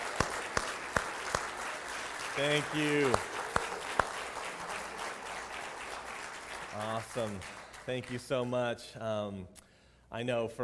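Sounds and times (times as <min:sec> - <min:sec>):
crowd applauding in a large room: 0:00.0 - 0:08.5
sharp claps: 0:00.0 - 0:08.6
speech: 0:02.4 - 0:03.4, 0:06.8 - 0:10.6.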